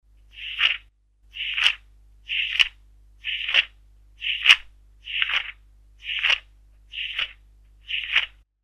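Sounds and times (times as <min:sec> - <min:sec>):
page turning: 0:00.4 - 0:00.8, 0:01.4 - 0:01.8, 0:02.4 - 0:02.7, 0:03.3 - 0:03.7, 0:04.3 - 0:08.4.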